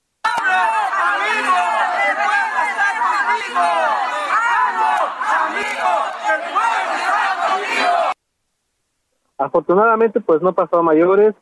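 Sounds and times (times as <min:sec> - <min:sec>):
rival political crowds shouting at each other: 0:00.2 - 0:08.2
speech: 0:09.5 - 0:11.4.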